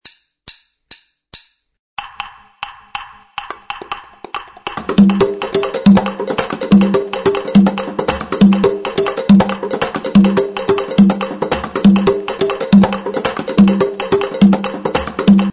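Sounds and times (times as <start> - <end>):
conga drums: 2.0 - 15.5
rumba music mix: 3.5 - 15.5.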